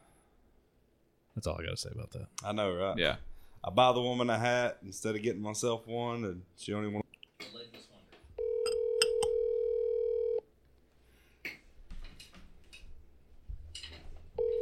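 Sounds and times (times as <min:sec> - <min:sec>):
speech: 0:01.4 - 0:07.0
telephone ringing on a call: 0:08.4 - 0:10.4, 0:14.4 - 0:14.6.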